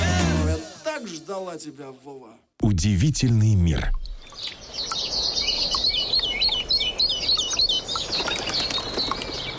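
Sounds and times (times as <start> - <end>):
speech: 1.0 - 5.0
birds singing and chirping in a chorus: 3.8 - 9.5.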